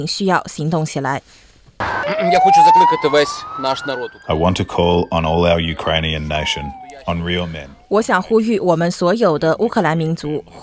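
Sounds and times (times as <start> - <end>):
speech: 0.0 - 10.6
air raid sirens wailing over Kyiv during a military invasion: 1.8 - 8.2.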